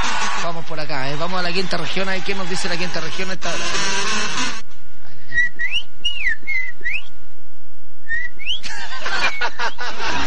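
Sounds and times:
speech: 0.5 - 4.6
person whistling an imitation of a bird's song: 5.3 - 7.1, 8.1 - 8.7
laughter: 8.6 - 10.2.

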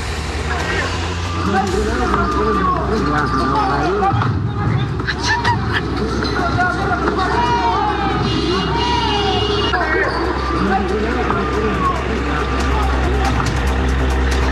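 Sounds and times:
crowd's overlapping voices and shouts in street unrest: 0.0 - 14.5
low rumble of idling vehicles: 0.0 - 14.5
laughter: 0.5 - 14.5.

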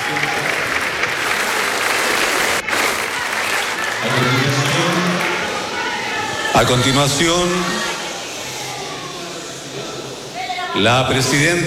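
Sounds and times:
large crowd applauding in a reverberant ceremonial hall: 0.0 - 7.2
speech: 6.6 - 7.8, 10.8 - 11.6.

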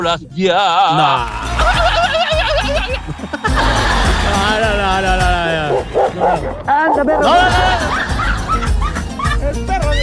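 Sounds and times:
speech: 0.0 - 2.2, 6.2 - 8.1
laughter: 0.8 - 10.0
dog barking in yappy bursts: 5.7 - 7.3.

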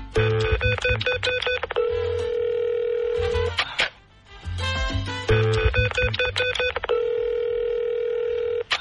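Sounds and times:
coin-operated street payphone keypad tones: 0.2 - 3.4, 5.3 - 8.7.

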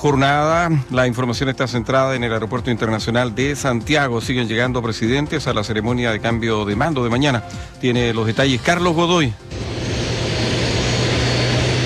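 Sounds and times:
speech: 0.0 - 9.7
private jet engine roar on the apron after landing: 8.2 - 11.8.

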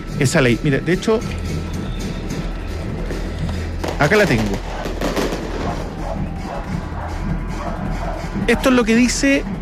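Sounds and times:
speech: 0.2 - 1.6, 4.0 - 4.8, 8.4 - 9.5
fireworks exploding at an afternoon fireworks show: 2.2 - 7.5.

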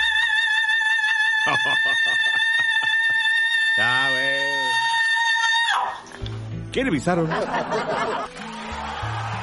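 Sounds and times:
person screaming: 0.1 - 6.0
laughter: 1.2 - 3.5, 7.0 - 9.4
speech: 6.8 - 8.4.

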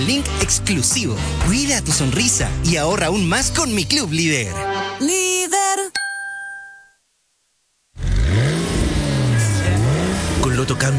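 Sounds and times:
speech: 0.0 - 6.0, 10.7 - 10.9
sports car engine revving: 8.0 - 10.9.

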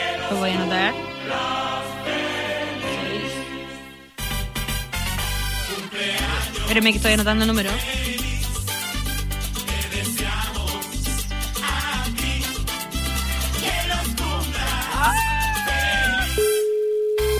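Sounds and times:
loud music: 0.0 - 16.5
speech: 0.3 - 2.0, 6.1 - 8.1
telephone ringing tone on an outgoing call: 16.4 - 17.3.

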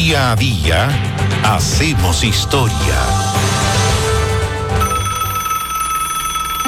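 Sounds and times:
speech: 0.1 - 3.5
telephone bell ringing: 4.8 - 6.6.

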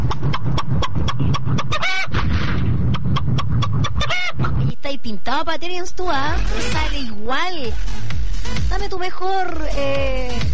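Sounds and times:
hen clucking: 0.0 - 4.8
constant low rumble: 0.0 - 10.5
speech: 5.4 - 10.5.

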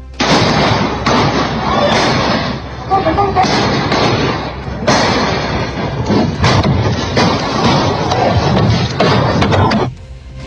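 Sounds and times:
loud sharp gunshots in a reverberant space: 0.2 - 9.9.

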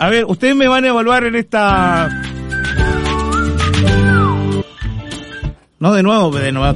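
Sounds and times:
speech: 0.0 - 2.3, 5.8 - 6.7
steady music: 1.0 - 6.7
person whistling a short wavering tune: 1.9 - 5.6.

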